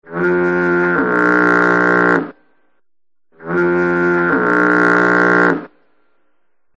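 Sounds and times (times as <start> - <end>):
foghorn: 0.0 - 2.4, 3.4 - 5.8.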